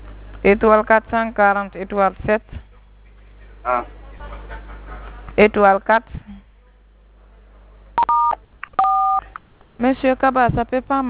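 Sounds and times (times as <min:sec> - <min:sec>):
speech: 0:00.4 - 0:02.7, 0:03.6 - 0:04.0, 0:05.4 - 0:06.4, 0:09.8 - 0:11.0
telephone keypad DTMF tones over a phone line: 0:08.0 - 0:09.3.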